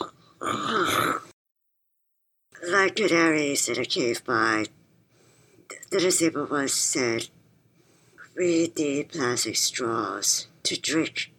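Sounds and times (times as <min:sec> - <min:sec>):
throaty vocal sound: 0:00.0 - 0:01.4
storyteller coughing: 0:00.4 - 0:01.3
speech: 0:02.9 - 0:04.8, 0:05.7 - 0:07.4, 0:08.4 - 0:11.3.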